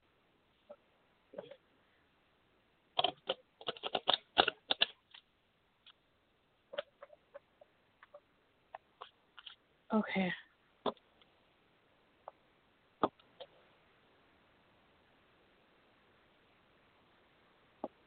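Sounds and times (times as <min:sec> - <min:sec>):
deck of tarot cards being shuffled: 0:03.0 - 0:05.3
speech: 0:10.0 - 0:10.4.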